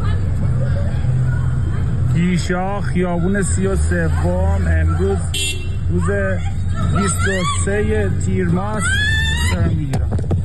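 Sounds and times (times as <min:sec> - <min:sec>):
noisy street crowd: 0:00.0 - 0:10.4
speech: 0:02.2 - 0:10.1
other voices shouting: 0:05.9 - 0:09.7
woman screaming and wailing while being attacked: 0:08.7 - 0:09.7.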